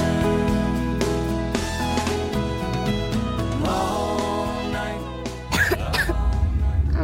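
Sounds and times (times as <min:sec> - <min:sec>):
steady music: 0:00.0 - 0:07.0
child coughing: 0:05.5 - 0:06.2.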